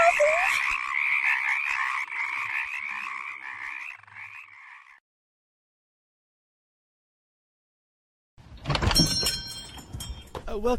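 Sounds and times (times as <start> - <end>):
chorus of many frogs croaking: 0.0 - 5.0
speech: 10.6 - 10.7.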